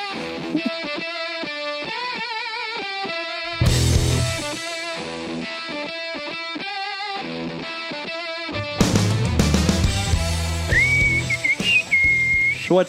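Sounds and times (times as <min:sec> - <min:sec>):
musical backing: 0:00.0 - 0:12.8
several people whistling a melody in a lounge: 0:10.6 - 0:12.7.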